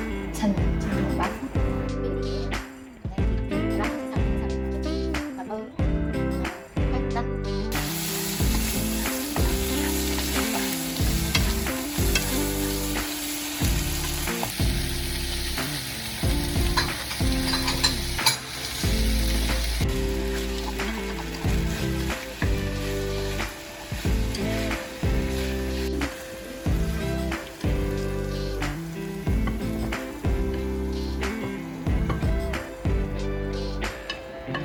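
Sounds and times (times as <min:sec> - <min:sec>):
rhythmic music: 0:00.0 - 0:34.6
speech: 0:00.4 - 0:01.4
kimchi udon with bacon and fried fish balls sizzling in a hot pan: 0:07.6 - 0:34.6.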